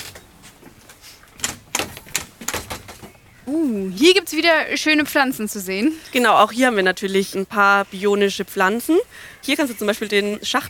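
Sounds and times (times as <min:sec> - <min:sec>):
faint hiss: 0:00.0 - 0:10.6
door opening and closing as people go out: 0:01.4 - 0:03.2
sharp clicks and clattering knocks: 0:01.4 - 0:03.2
speech: 0:03.5 - 0:10.6.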